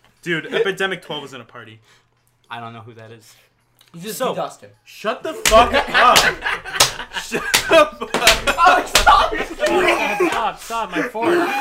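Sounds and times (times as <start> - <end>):
speech: 0.2 - 11.5
people laughing: 5.3 - 11.5
sharp loud slaps: 5.4 - 10.5.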